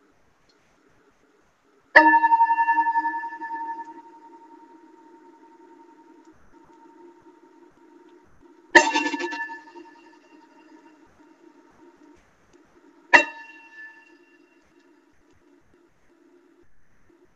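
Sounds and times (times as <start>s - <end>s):
bell struck with a bright metallic tone: 2.0s - 6.1s, 8.8s - 10.9s, 13.1s - 14.3s.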